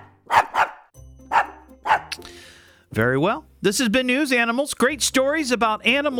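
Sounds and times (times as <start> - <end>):
dog barking: 0.0 - 2.2
speech: 2.9 - 6.1.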